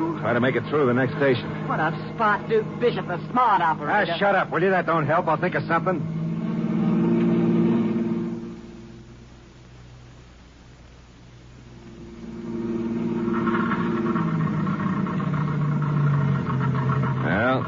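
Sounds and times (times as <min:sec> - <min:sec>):
car engine faltering as it runs low on gas: 0:00.0 - 0:09.7, 0:11.4 - 0:17.6
speech: 0:00.2 - 0:06.2.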